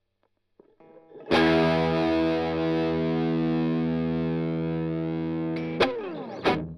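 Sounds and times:
strumming: 1.2 - 6.7.

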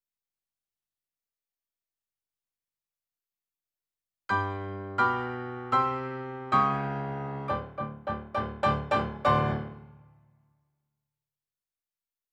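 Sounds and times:
rock and roll piano: 4.3 - 10.0.

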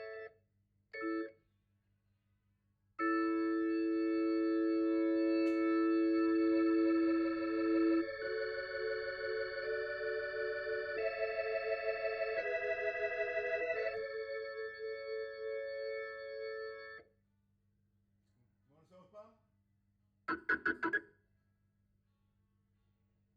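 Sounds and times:
Hammond organ through Leslie speaker: 0.0 - 0.3, 1.0 - 1.3, 3.0 - 17.0, 20.3 - 21.0.

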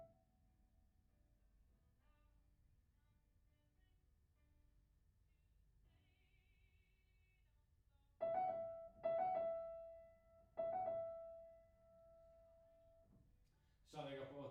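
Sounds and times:
piano: 8.2 - 13.4.

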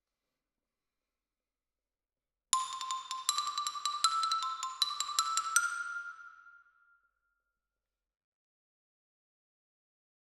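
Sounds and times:
xylophone: 2.6 - 6.4.

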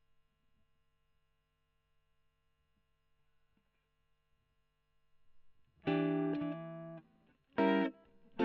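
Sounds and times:
electric guitar: 5.8 - 8.4.

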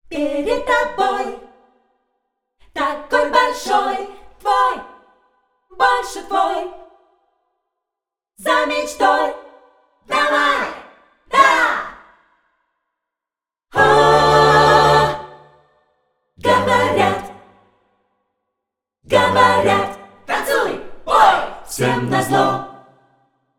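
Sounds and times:
choirs singing: 0.1 - 1.5, 2.7 - 5.0, 5.7 - 6.9, 8.4 - 12.1, 13.7 - 15.6, 16.4 - 17.6, 19.1 - 23.0.

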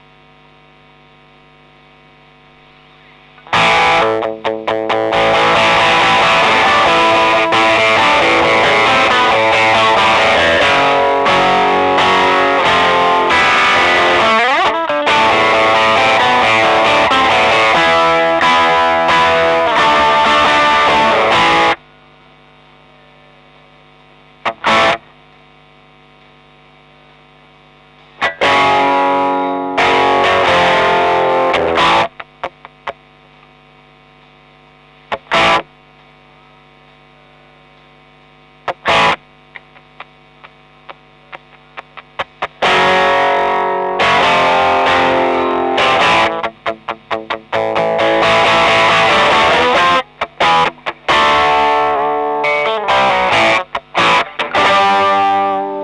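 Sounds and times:
overdriven electric guitar: 3.4 - 21.9, 24.4 - 25.2, 28.1 - 33.1, 35.1 - 35.8, 38.6 - 55.8.

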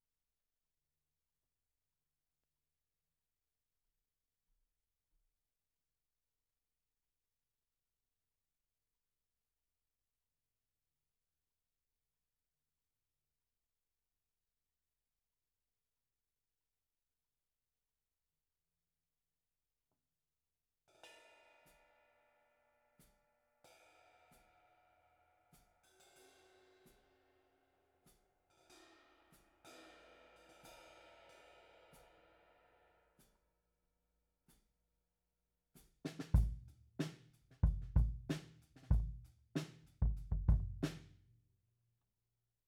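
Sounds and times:
kick drum: 36.4 - 36.7, 37.6 - 39.2, 40.0 - 41.0.

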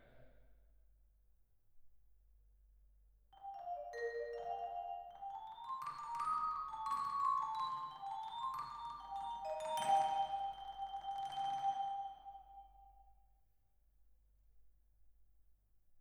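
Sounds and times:
vibraphone: 3.4 - 12.8.

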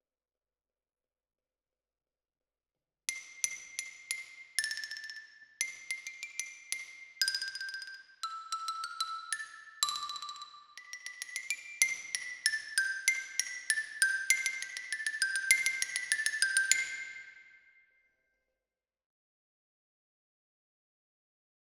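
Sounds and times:
close xylophone: 3.1 - 17.4.

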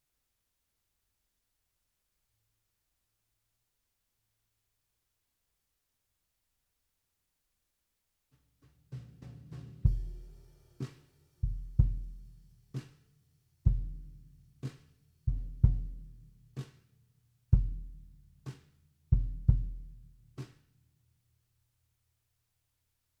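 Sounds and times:
bass drum: 9.8 - 10.5, 11.4 - 12.4, 13.7 - 14.3, 15.3 - 16.3, 17.6 - 18.2, 19.2 - 20.2.

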